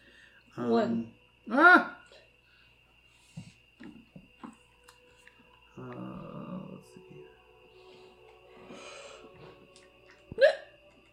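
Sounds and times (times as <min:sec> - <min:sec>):
faint humming background: 0:00.0 - 0:11.1
speech: 0:00.6 - 0:01.9
hiccup with click-like snap and voiced chirp: 0:10.3 - 0:10.7.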